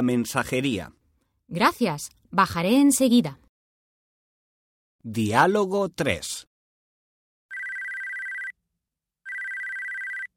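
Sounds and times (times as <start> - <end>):
speech: 0.0 - 3.4, 5.0 - 6.5
telephone ringing with electronic trill: 7.5 - 8.6, 9.2 - 10.3.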